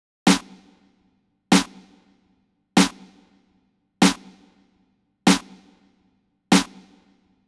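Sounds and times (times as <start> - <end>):
hip hop snare drum track in A minor: 0.2 - 2.2, 2.8 - 4.7, 5.3 - 7.4.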